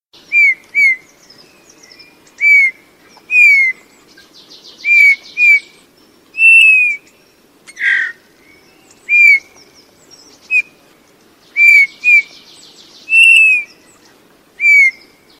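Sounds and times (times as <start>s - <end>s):
bullfinch: 2.4s - 5.8s, 6.4s - 7.0s, 7.7s - 8.2s, 9.0s - 9.5s, 11.6s - 12.4s, 13.1s - 15.0s.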